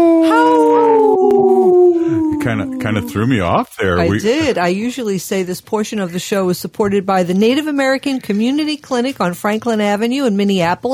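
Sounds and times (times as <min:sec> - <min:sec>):
wolf howling: 0:00.0 - 0:03.6
speech: 0:02.5 - 0:10.9.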